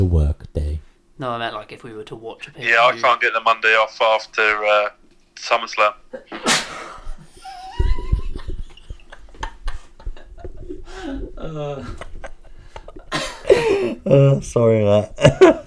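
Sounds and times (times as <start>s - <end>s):
speech: 1.2s - 6.9s, 11.0s - 12.1s, 13.6s - 15.6s
people laughing: 6.1s - 14.0s, 15.2s - 15.6s
person sneezing: 6.3s - 6.9s.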